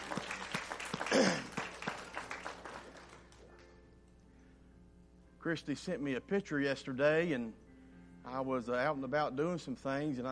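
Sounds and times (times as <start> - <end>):
crowd applauding in a reverberant room: 0.0 - 3.7
speech: 5.4 - 7.6, 8.2 - 10.2.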